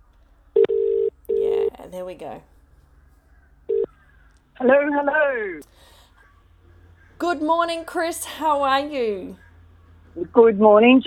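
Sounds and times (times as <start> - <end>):
electronic ring tone over a phone line: 0.6 - 1.8, 3.7 - 5.6
speech: 1.9 - 2.5, 4.6 - 6.0, 7.2 - 9.4, 10.2 - 11.0.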